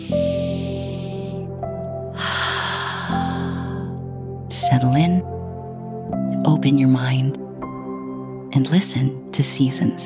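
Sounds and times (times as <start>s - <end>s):
slow deep breath during a calming guided session: 0.0s - 1.5s, 2.2s - 4.1s
steady sustained low drone: 0.0s - 4.7s
speech: 4.7s - 5.4s, 6.6s - 7.4s, 8.6s - 10.0s.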